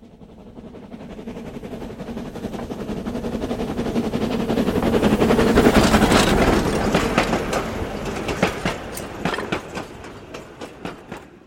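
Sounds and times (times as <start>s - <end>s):
train rumbling along rails: 0.0s - 11.4s
train wheels clacking over track joints: 3.9s - 11.4s.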